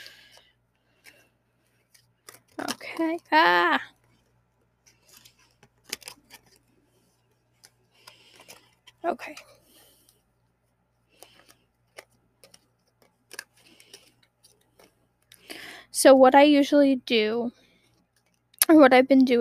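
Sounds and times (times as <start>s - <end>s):
deck of tarot cards being shuffled: 0.1s - 4.3s, 4.9s - 10.1s, 11.1s - 15.0s
speech: 3.0s - 3.9s, 16.0s - 17.6s, 18.7s - 19.3s.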